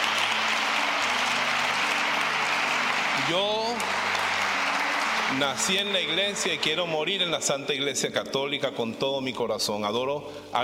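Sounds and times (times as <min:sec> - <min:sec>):
crowd applause: 0:00.0 - 0:07.3
speech: 0:03.2 - 0:04.0, 0:05.3 - 0:10.6.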